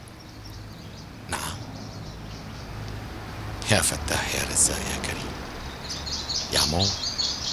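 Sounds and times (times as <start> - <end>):
small birds chirping and twittering outdoors: 0.0 - 7.5
speech: 3.7 - 5.5, 6.5 - 7.0.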